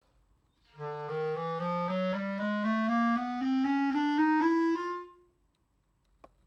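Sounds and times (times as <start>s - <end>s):
clarinet in chalumeau register: 0.8s - 5.3s.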